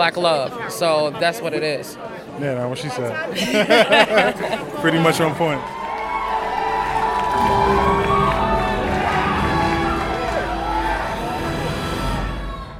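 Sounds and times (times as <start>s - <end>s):
speech: 0.0s - 5.8s
laughter: 3.3s - 5.2s
movie theater audience yelling and cheering: 4.6s - 12.7s.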